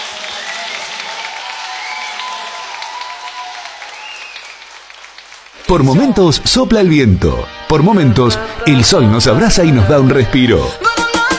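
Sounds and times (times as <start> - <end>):
audience whistles and cheers: 0.0 - 4.7
audience applause: 0.0 - 6.2
speech: 5.7 - 11.0.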